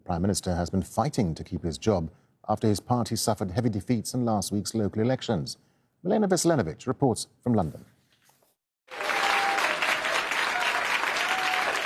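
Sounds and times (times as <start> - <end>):
speech: 0.1 - 7.9
audience applause at a political speech: 8.9 - 11.8.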